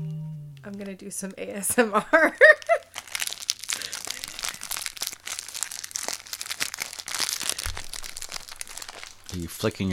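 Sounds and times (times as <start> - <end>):
speech: 1.0 - 2.8, 9.3 - 9.9
plastic bag of fruit snacks crinkling while being opened: 2.1 - 9.9.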